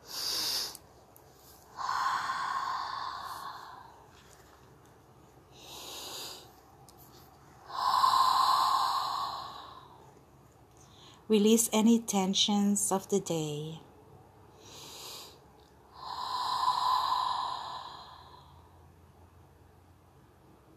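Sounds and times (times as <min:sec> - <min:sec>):
slow deep breathing with inhales and exhales: 0:00.0 - 0:00.8, 0:01.4 - 0:04.7, 0:05.4 - 0:10.2, 0:14.5 - 0:19.0
speech: 0:11.3 - 0:13.8.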